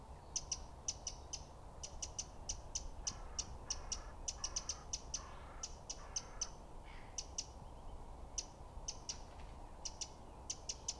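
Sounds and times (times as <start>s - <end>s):
low background noise: 0.0s - 10.9s
Eurasian wren Troglodytes troglodytes giving sharp dry ticking calls: 0.4s - 6.6s, 8.4s - 10.9s.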